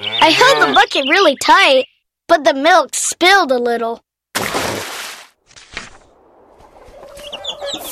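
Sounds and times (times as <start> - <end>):
hens clucking and squawking: 0.0 - 1.1, 6.4 - 7.9
chirpy calls: 0.0 - 2.0, 6.1 - 7.9
speech: 0.0 - 4.5.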